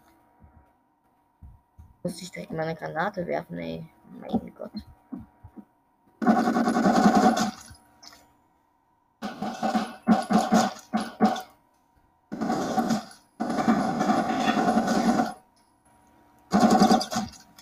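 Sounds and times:
speech: 2.0 - 4.9
rapid automatic video game gunfire: 6.2 - 7.8, 9.2 - 11.6, 12.3 - 15.5, 16.5 - 17.6.

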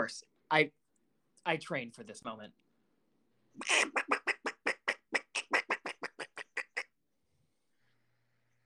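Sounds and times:
speech: 0.0 - 0.8, 1.4 - 2.6, 3.6 - 4.1
person imitating duck quacks: 3.6 - 6.9.

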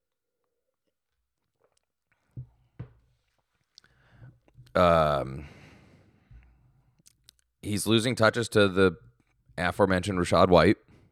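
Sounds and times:
speech: 4.8 - 5.6, 7.6 - 10.8
breathy satisfied exhale: 5.4 - 6.5
lip clicks: 7.0 - 7.5.

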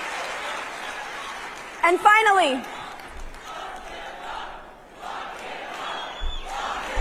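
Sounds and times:
speech: 1.9 - 2.8
large crowd at a political conference chanting a slogan in unison: 2.4 - 6.9.

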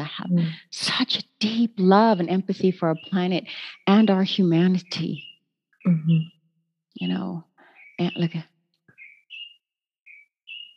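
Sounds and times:
speech: 0.1 - 6.4, 7.0 - 8.5
small bird singing clear high whistled notes: 2.1 - 6.3, 7.0 - 10.7.

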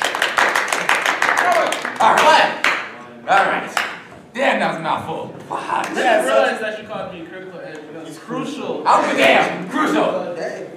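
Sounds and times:
small talk show audience clapping: 0.0 - 4.2, 5.7 - 6.4
speech: 2.0 - 2.7, 3.3 - 10.7.

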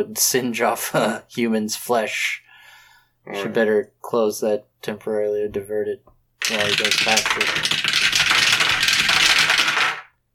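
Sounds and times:
speech: 0.0 - 2.4, 3.2 - 8.0
many dice rolled together in a game: 6.4 - 10.1.

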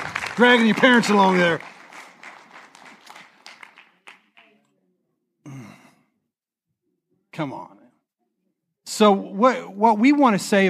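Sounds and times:
audience applause: 0.0 - 4.5
speech: 0.4 - 1.7, 7.4 - 7.8, 8.9 - 10.6.

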